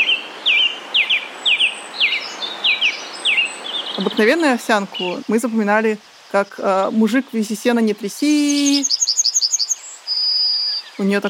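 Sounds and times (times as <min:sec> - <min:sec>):
song thrush singing repeated whistled phrases: 0:00.0 - 0:04.2, 0:08.4 - 0:11.0
soft hiss: 0:00.0 - 0:11.2
speech: 0:04.0 - 0:09.0, 0:11.0 - 0:11.2.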